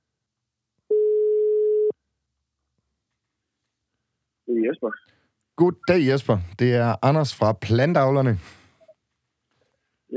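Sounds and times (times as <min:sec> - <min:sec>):
ringback tone of an outgoing phone call: 0:00.9 - 0:01.9
speech: 0:04.6 - 0:08.6.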